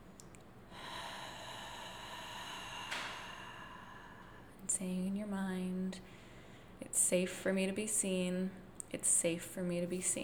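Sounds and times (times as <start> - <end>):
deep breath drawn in through the nose: 0.7 - 4.6, 6.1 - 6.8
slow long exhale in a breathing exercise: 0.7 - 4.6
speech: 4.8 - 6.2, 6.9 - 10.2.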